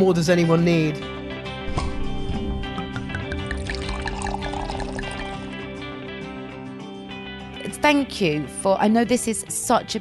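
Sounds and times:
speech: 0:00.0 - 0:01.2, 0:07.8 - 0:10.0
sparkling water bubbles fizzing: 0:02.8 - 0:05.6
sparkling water pouring into a glass: 0:03.0 - 0:05.6.

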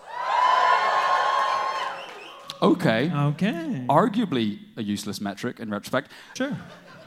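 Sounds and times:
audience cheering and whooping: 0:00.0 - 0:02.6
speech: 0:02.6 - 0:07.0
laughter: 0:06.4 - 0:07.0.

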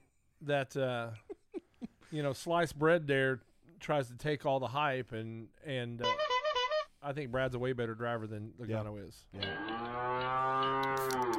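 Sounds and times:
speech: 0:00.4 - 0:01.3, 0:02.1 - 0:06.3, 0:07.0 - 0:10.0
cow mooing: 0:09.4 - 0:11.3.

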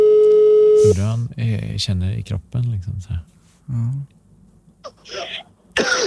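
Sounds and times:
speech: 0:00.9 - 0:04.2, 0:04.8 - 0:06.0
man coughing: 0:04.9 - 0:06.0.

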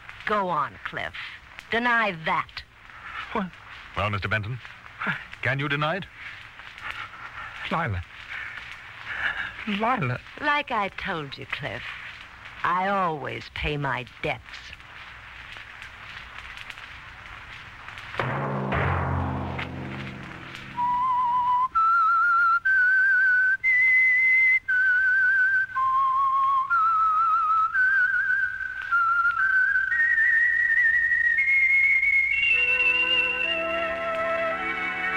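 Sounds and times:
speech: 0:00.3 - 0:02.7, 0:03.3 - 0:06.4, 0:07.7 - 0:08.2, 0:09.6 - 0:12.0, 0:12.6 - 0:14.8
low musical swell: 0:18.5 - 0:21.4
solo whistled theme melody of a radio programme: 0:20.7 - 0:35.1.

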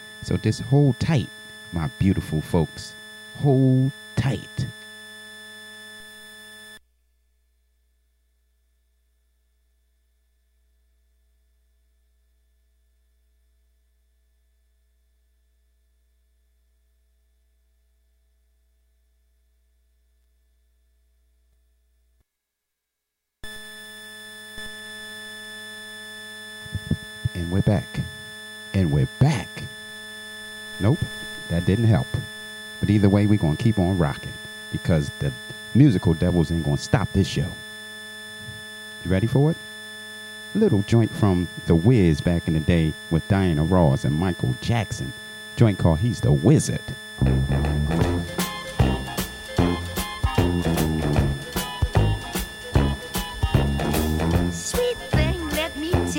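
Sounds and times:
steady hissing buzzy noise in the audio feed: 0:00.0 - 0:06.8, 0:23.4 - 0:56.1
speech: 0:00.2 - 0:04.8, 0:32.9 - 0:37.6, 0:39.0 - 0:39.7, 0:40.5 - 0:47.8.

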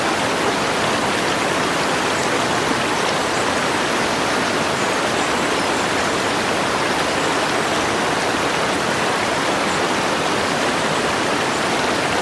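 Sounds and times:
fast water rushing over rocks in a mountain stream: 0:00.0 - 0:12.2.

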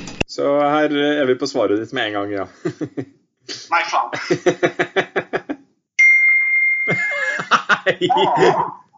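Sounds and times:
speech: 0:00.5 - 0:05.1, 0:08.0 - 0:08.9
rapid bursts of laughter: 0:04.1 - 0:05.6, 0:06.9 - 0:08.9
computer notification chime: 0:06.0 - 0:07.1.

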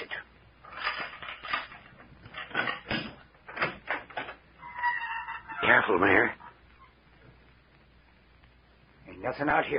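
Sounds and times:
clattering and rattling: 0:00.6 - 0:05.8
front door flung open: 0:00.7 - 0:05.8
speech: 0:05.8 - 0:06.4, 0:09.3 - 0:09.7.

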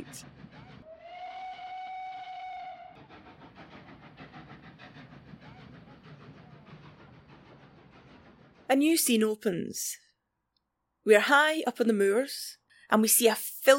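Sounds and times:
steam locomotive engine chuffing and clattering on a heritage railway: 0:00.0 - 0:00.9, 0:02.8 - 0:09.5
steam locomotive whistle on a heritage railway: 0:00.0 - 0:04.0
speech: 0:00.1 - 0:00.3, 0:08.7 - 0:10.0, 0:11.1 - 0:13.7.

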